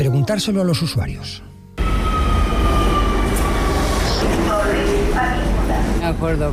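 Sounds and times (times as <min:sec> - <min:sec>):
speech: 0:00.3 - 0:01.5, 0:06.1 - 0:06.5
metro train running on an underground line: 0:01.2 - 0:06.5
thin high whining tones: 0:01.8 - 0:05.6.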